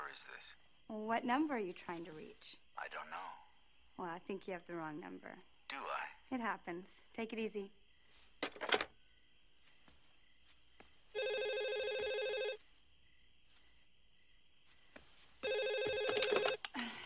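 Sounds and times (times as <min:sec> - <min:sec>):
speech: 0:00.1 - 0:07.8
phone line hum: 0:11.1 - 0:12.7, 0:15.4 - 0:16.7
telephone ringing: 0:11.2 - 0:12.6, 0:15.4 - 0:16.7.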